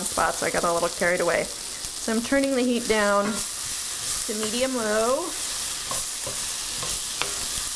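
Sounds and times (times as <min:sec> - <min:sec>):
onions sizzling in a frying pan with olive oil: 0:00.0 - 0:07.7
speech: 0:00.2 - 0:03.5, 0:04.3 - 0:06.4
stirring scraping a frying pan: 0:02.9 - 0:07.7.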